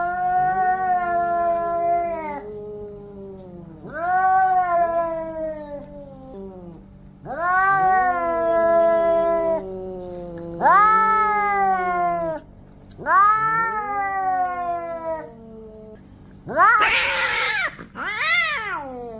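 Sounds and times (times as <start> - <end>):
two cats yowling in a standoff: 0.0 - 12.4, 13.0 - 19.1.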